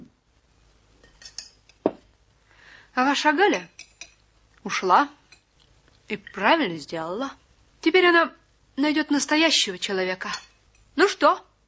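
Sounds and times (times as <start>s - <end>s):
thrown plate clattering: 1.0s - 2.0s, 10.2s - 10.9s
speech: 2.9s - 3.8s, 4.6s - 5.2s, 6.1s - 11.5s.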